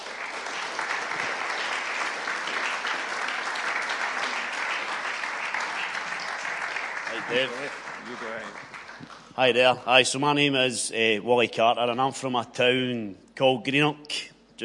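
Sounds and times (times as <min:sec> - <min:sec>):
crowd applause: 0:00.0 - 0:09.6
speech: 0:07.3 - 0:08.7, 0:09.4 - 0:14.6.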